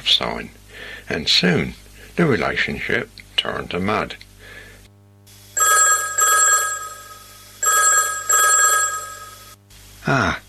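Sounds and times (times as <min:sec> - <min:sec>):
speech: 0:00.0 - 0:04.3, 0:10.1 - 0:10.4
telephone ringing with a classic trilling bell: 0:05.6 - 0:09.6.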